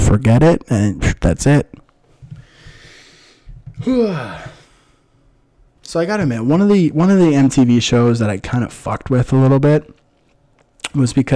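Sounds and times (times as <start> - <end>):
speech: 0.1 - 1.8, 3.8 - 4.6, 5.9 - 10.0, 10.9 - 11.3
heavy labored breathing: 2.3 - 5.1
wheezy voiced groan: 3.8 - 4.9.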